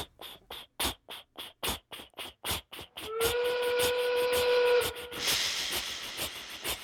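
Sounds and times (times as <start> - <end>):
steam locomotive starting up and chuffing: 2.8 - 6.8.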